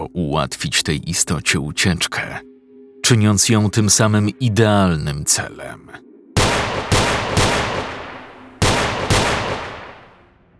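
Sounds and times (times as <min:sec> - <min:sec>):
speech: 0:00.0 - 0:06.0
gunshots fired by a police officer echoing in a park at night: 0:06.4 - 0:10.3.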